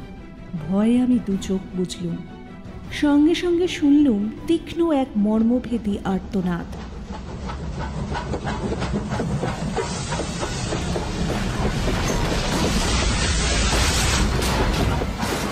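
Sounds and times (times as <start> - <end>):
speech: 0.6 - 6.9
railway engine hissing steam: 7.2 - 15.5.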